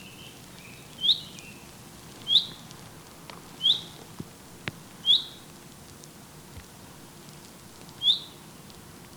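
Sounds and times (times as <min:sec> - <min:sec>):
common chaffinch Fringilla coelebs giving a short high bright note: 0:00.0 - 0:01.6, 0:02.3 - 0:02.6, 0:03.6 - 0:04.0, 0:05.0 - 0:05.4, 0:08.0 - 0:08.4.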